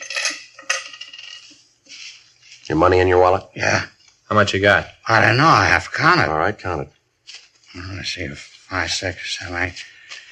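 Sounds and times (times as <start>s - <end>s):
keys and pocket items set down on a table: 0.0s - 1.6s
speech: 2.7s - 7.0s, 7.8s - 9.9s.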